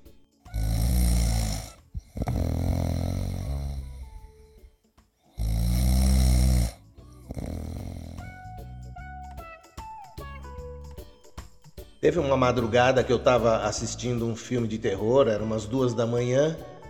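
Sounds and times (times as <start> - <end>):
thinner wheezy and whistling snoring tones: 0.0 - 8.6
person snoring with deep rattling snores: 0.5 - 4.7, 5.3 - 8.6
speech: 12.0 - 16.7.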